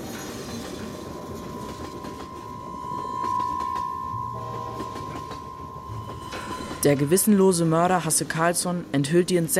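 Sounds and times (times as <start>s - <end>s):
train rumbling along the rails: 0.0s - 9.5s
faint rhythmic clatter of train: 0.7s - 7.6s
sustained metallic whine of train: 0.7s - 8.2s
speech: 6.8s - 9.5s.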